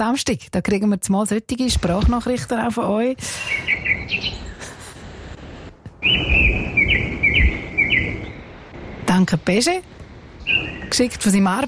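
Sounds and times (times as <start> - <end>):
speech: 0.0 - 4.4, 6.0 - 7.5, 9.2 - 9.9, 10.5 - 11.6
birds chirping and singing in bright repeated trills: 3.2 - 4.8, 6.0 - 8.7, 10.3 - 11.4.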